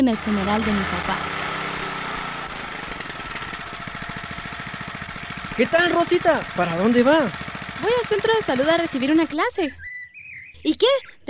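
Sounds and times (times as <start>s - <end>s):
speech: 0.0s - 1.4s, 5.6s - 9.8s, 10.6s - 11.2s
motorcycle engine chugging: 0.0s - 9.8s
high-pitched squeal: 4.2s - 5.2s.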